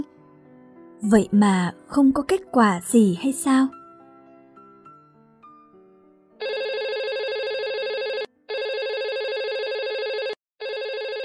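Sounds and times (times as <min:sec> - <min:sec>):
speech: 0:01.0 - 0:03.8
telephone ringing with loud bright electronic rings: 0:06.4 - 0:11.2.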